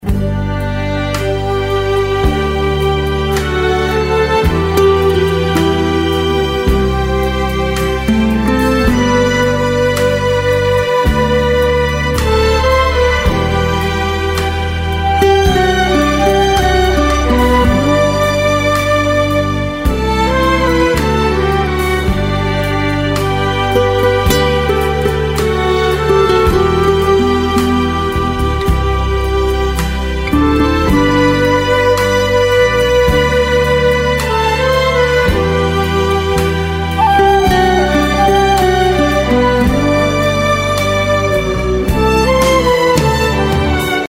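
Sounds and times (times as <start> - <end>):
instrumental soft rock music: 0.0 - 44.0.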